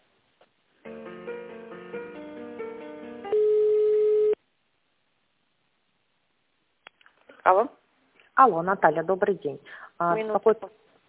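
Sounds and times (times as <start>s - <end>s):
electronic telephone line tone while a call is transferred: 3.2s - 4.4s
speech: 7.5s - 7.8s, 8.4s - 10.8s.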